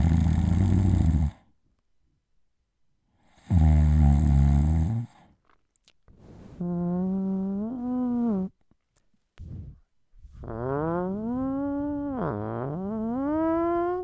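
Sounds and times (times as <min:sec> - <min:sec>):
recorded snoring played back through a phone speaker: 0:00.0 - 0:01.5, 0:03.3 - 0:05.4, 0:06.5 - 0:08.5, 0:09.4 - 0:14.0.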